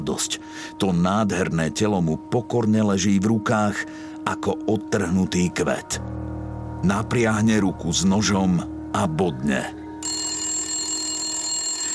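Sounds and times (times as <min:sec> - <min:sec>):
speech: 0:00.0 - 0:09.8
telephone bell ringing at a police station: 0:10.0 - 0:11.9.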